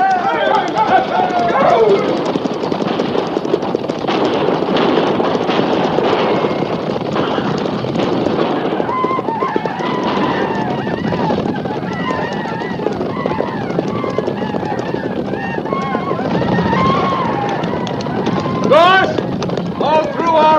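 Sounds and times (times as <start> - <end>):
men shouting and yelling: 0.0 - 2.2, 18.5 - 19.2, 19.8 - 20.5
many horses galloping in a cavalry charge: 0.0 - 20.5.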